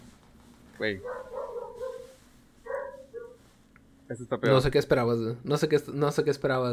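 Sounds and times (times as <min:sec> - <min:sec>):
speech: 0:00.8 - 0:01.4, 0:04.1 - 0:06.7
dog left outside barking and whining: 0:01.0 - 0:03.5.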